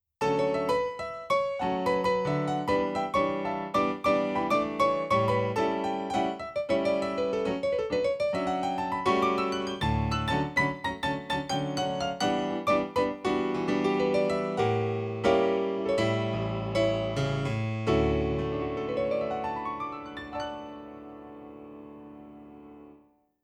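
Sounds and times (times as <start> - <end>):
bright grand piano on Casio PX-S3100: 0.0 - 23.4.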